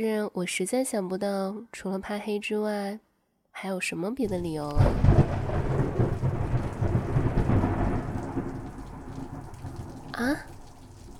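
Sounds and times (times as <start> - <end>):
speech: 0.0 - 5.4, 10.2 - 10.5
low rolling thunder rumbling: 4.2 - 11.1
steady heavy rain pattering down: 4.2 - 11.1.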